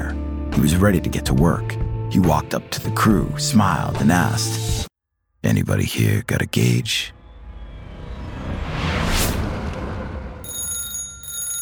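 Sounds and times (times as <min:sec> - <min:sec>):
speech: 0:00.6 - 0:07.2
broad whooshing swell: 0:07.0 - 0:10.5
telephone ringing in a house at night: 0:10.5 - 0:11.5.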